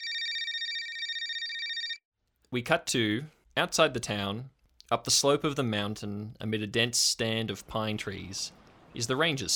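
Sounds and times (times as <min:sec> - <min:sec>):
telephone ringing with a rapid high electronic trill: 0:00.0 - 0:02.0
speech: 0:02.5 - 0:09.5.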